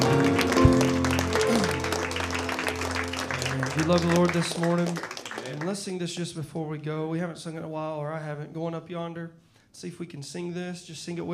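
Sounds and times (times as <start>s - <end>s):
sustained musical tones: 0.0s - 4.6s
church congregation clapping hands in praise during a worship service: 0.0s - 5.8s
speech: 3.9s - 11.3s.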